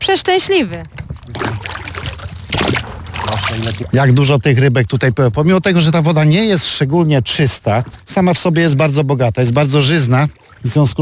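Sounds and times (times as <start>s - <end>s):
speech: 0.1s - 1.6s, 3.5s - 11.0s
oars dipping and splashing as a rowboat sets off: 0.8s - 5.2s, 6.6s - 11.0s.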